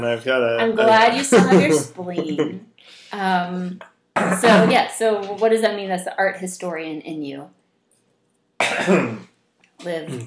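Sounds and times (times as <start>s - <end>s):
laughter: 0.0s - 2.6s, 4.2s - 4.7s
speech: 0.0s - 7.6s, 8.6s - 10.2s
person coughing: 0.8s - 2.5s, 4.2s - 4.7s, 8.6s - 9.2s
throat clearing: 4.2s - 4.7s, 8.6s - 9.3s, 10.1s - 10.2s.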